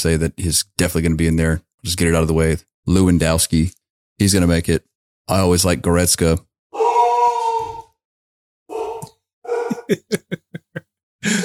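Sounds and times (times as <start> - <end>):
speech: 0.0 - 6.5, 9.9 - 10.5
large female Labrador howling: 6.8 - 7.9, 8.7 - 10.0
laughter: 9.5 - 11.4.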